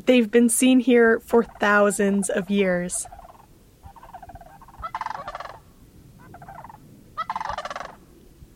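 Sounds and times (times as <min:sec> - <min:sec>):
speech: 0:00.1 - 0:03.2
big gray long-necked birds with red head patch giving rattling, rolling calls: 0:01.4 - 0:05.6, 0:06.2 - 0:08.0.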